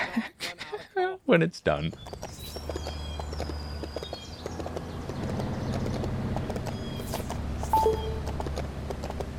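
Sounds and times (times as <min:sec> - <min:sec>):
speech: 0:01.2 - 0:02.3
horse hooves clip-clopping at a walking pace: 0:02.0 - 0:09.3
faint chirps and tones: 0:07.6 - 0:08.4.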